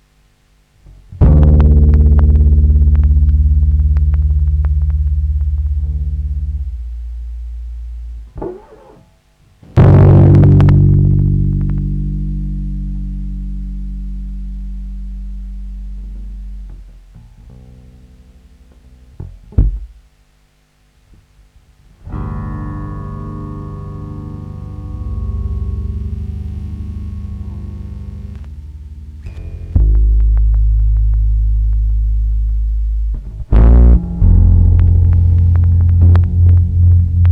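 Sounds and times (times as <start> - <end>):
filter improvisation: 1.2 - 17.7, 24.4 - 37.2.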